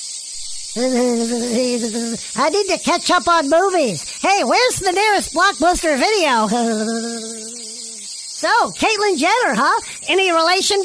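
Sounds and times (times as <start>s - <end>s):
lower sustained buzzing tone: 0.0s - 3.8s, 5.3s - 8.6s
chorus of periodical cicadas droning: 0.0s - 10.8s
speech: 0.7s - 7.7s, 8.4s - 10.8s.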